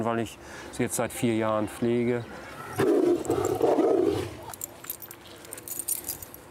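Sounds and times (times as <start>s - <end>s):
speech: 0.0s - 3.7s
tiger growling at feeding time: 2.4s - 4.6s
faint jangling: 4.4s - 6.5s.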